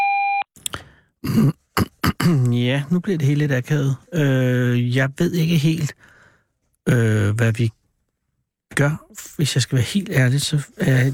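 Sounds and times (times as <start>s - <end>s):
electronic voicemail beep after a phone's answering message: 0.0s - 0.4s
speech: 1.2s - 1.6s, 2.8s - 6.2s, 6.9s - 7.8s, 8.7s - 11.1s
person clearing their throat: 1.2s - 2.5s
person coughing: 1.2s - 2.5s.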